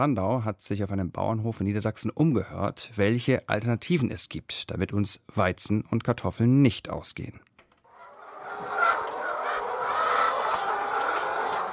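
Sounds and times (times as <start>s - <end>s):
speech: 0.0s - 7.5s
hens clucking in a mobile chicken coop: 7.9s - 11.7s.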